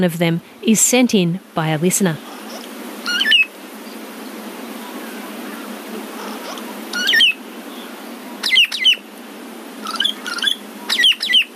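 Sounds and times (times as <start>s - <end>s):
speech: 0.0s - 2.4s
steady outdoor hiss: 0.0s - 11.5s
ground cuckoo-shrike calls: 3.0s - 3.5s, 6.4s - 7.4s, 8.4s - 9.0s, 9.8s - 11.5s.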